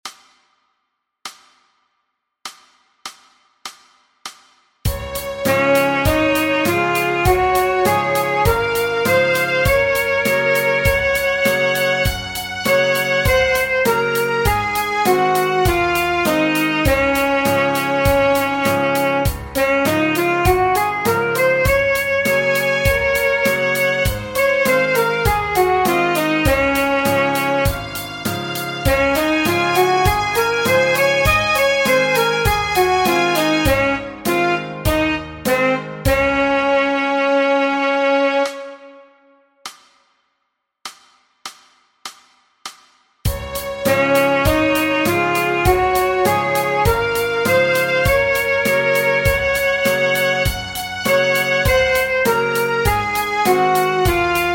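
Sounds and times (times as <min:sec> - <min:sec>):
B-flat saxophone playing a scale: 0:04.9 - 0:39.2, 0:43.3 - 0:54.5.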